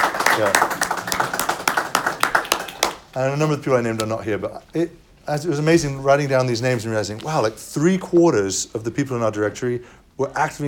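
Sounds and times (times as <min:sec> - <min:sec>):
applause from a small group: 0:00.0 - 0:03.2
speech: 0:00.4 - 0:00.7, 0:03.2 - 0:10.6.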